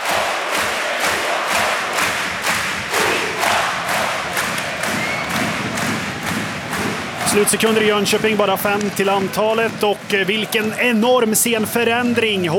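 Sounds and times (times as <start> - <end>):
ice hockey crowd singing and chanting in an arena after a goal: 0.0 - 12.5
rhythmic thumps or claps of an ice hockey crowd: 0.0 - 12.5
speech: 7.3 - 12.5.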